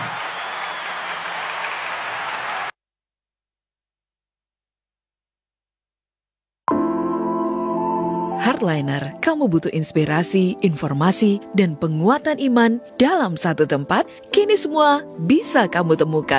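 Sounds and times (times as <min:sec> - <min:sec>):
crowd applauding: 0:00.0 - 0:02.7
music: 0:06.7 - 0:16.3
speech: 0:08.4 - 0:16.3.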